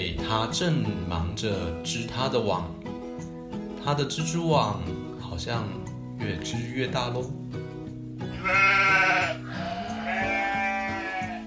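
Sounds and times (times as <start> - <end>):
speech: 0.0 - 2.8, 3.9 - 7.4
goat bleating: 8.3 - 11.4.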